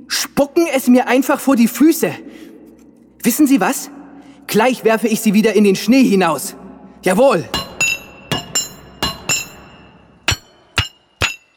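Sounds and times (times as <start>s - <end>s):
speech: 0.4s - 2.4s, 3.2s - 7.6s
metallic clattering among rocks inside a mountain: 7.6s - 11.5s.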